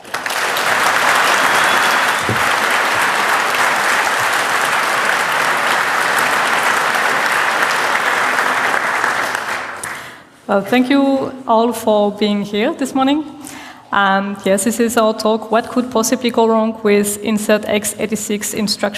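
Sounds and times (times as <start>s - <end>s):
audience applause for speakers at a technical talk: 0.0s - 10.1s
speech: 10.5s - 18.9s.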